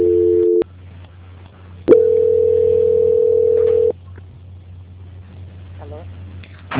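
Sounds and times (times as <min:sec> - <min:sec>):
telephone tone during a call transfer: 0:00.0 - 0:00.6, 0:01.9 - 0:03.9
faint telephone line hum: 0:00.0 - 0:06.7.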